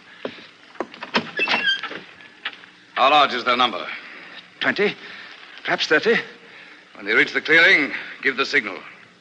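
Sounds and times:
guard opening a heavy door: 0:00.9 - 0:02.2
speech: 0:03.0 - 0:04.0, 0:04.6 - 0:06.4, 0:07.0 - 0:08.9.

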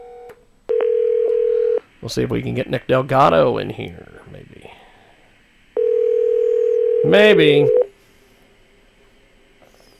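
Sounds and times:
telephone dialing and ringing line tones: 0:00.0 - 0:01.8, 0:05.8 - 0:07.9
speech: 0:02.0 - 0:04.4, 0:07.0 - 0:07.8.

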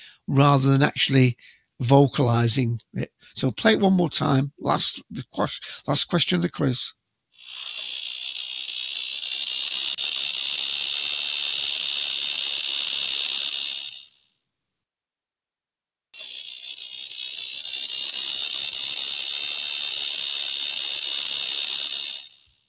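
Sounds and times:
speech: 0:00.0 - 0:07.9
cicada buzzing: 0:07.3 - 0:14.3, 0:16.2 - 0:22.6.

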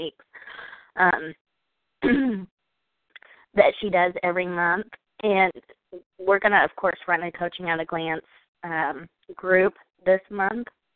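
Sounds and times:
speech: 0:00.0 - 0:00.3, 0:01.0 - 0:01.4, 0:03.6 - 0:10.8
person coughing and clearing throat: 0:02.0 - 0:02.5.

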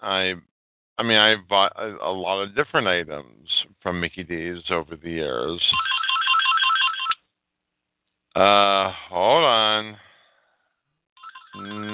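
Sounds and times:
speech: 0:00.0 - 0:05.8, 0:08.4 - 0:10.0, 0:11.6 - 0:11.9
phone ringtone electronic melody: 0:05.8 - 0:07.2, 0:11.2 - 0:11.9.

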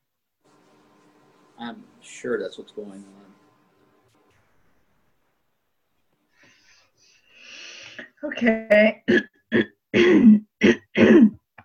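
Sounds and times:
speech: 0:01.6 - 0:03.3, 0:08.3 - 0:09.8
person clearing throat during a community call: 0:09.0 - 0:11.4.

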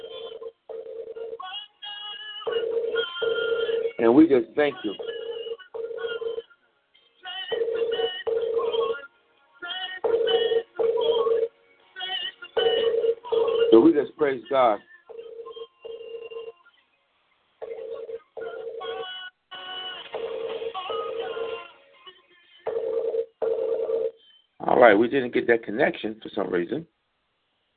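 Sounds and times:
telephone ringing from incoming calls: 0:00.0 - 0:01.4, 0:02.5 - 0:04.2, 0:04.8 - 0:06.5, 0:07.4 - 0:09.0, 0:10.0 - 0:11.5, 0:12.6 - 0:14.0, 0:14.6 - 0:16.6, 0:17.6 - 0:19.1, 0:20.2 - 0:21.7, 0:22.7 - 0:24.2
speech: 0:04.0 - 0:05.1, 0:14.0 - 0:14.9, 0:24.9 - 0:27.0.

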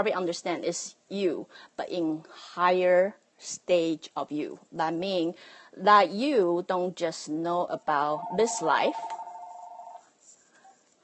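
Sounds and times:
speech: 0:00.0 - 0:09.2
fainter higher chirping notes: 0:08.0 - 0:10.0
phone ringing with a short electronic tone: 0:08.0 - 0:10.0.

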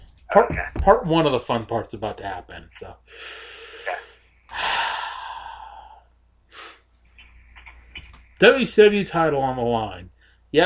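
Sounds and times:
speech: 0:00.4 - 0:03.6, 0:08.4 - 0:10.6
person taking a big deep breath in and out: 0:03.0 - 0:06.9
person sniffing: 0:03.1 - 0:06.9.

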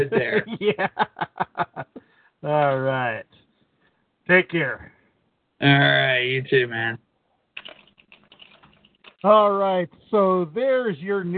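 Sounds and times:
speech: 0:00.0 - 0:01.8, 0:04.3 - 0:04.9, 0:05.6 - 0:07.0, 0:09.2 - 0:11.3
laughter: 0:00.0 - 0:02.0
fingers typing on a computer keyboard: 0:07.6 - 0:09.3.

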